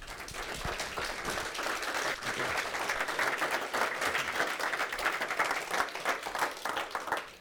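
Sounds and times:
audience applauding to welcome a speaker: 0:00.0 - 0:07.3.

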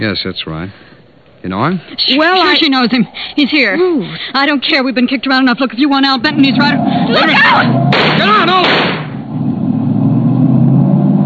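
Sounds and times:
speech: 0:00.0 - 0:09.0
car engine roaring as the vehicle drives hard: 0:05.8 - 0:11.2.

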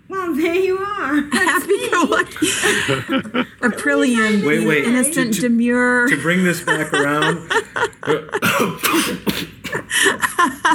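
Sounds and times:
speech: 0:00.3 - 0:09.3
laughter: 0:01.1 - 0:05.4, 0:06.0 - 0:08.8, 0:09.8 - 0:10.7
person coughing harshly: 0:08.4 - 0:10.1.

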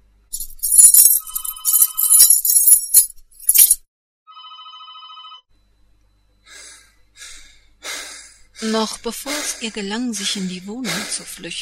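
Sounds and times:
telephone ringing: 0:01.2 - 0:02.3, 0:04.3 - 0:05.5
short breathy gasps: 0:06.5 - 0:11.4
speech: 0:08.6 - 0:11.5.

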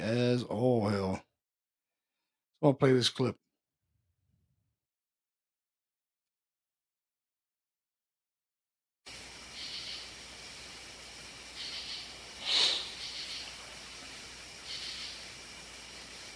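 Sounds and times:
speech: 0:00.1 - 0:00.7, 0:02.6 - 0:03.4
steady hiss: 0:09.1 - 0:16.3
person sniffling: 0:12.4 - 0:13.0.

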